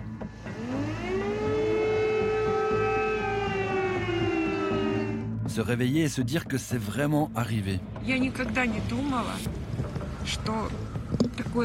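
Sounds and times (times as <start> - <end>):
air raid siren wailing during the war in Ukraine: 0.1 - 5.5
speech: 5.6 - 10.9.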